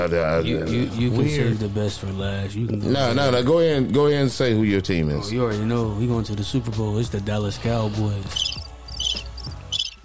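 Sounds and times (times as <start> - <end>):
speech: 0.0 - 8.6
crickets chirping: 8.3 - 10.0.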